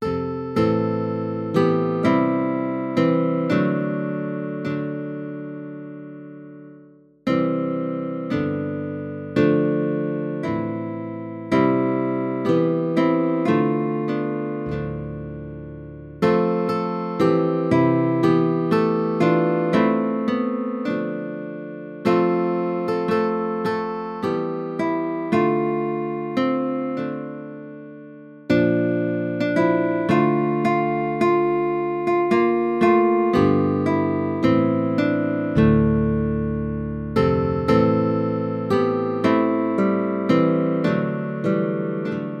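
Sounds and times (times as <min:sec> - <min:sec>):
guitar piece: 0:00.0 - 0:42.3.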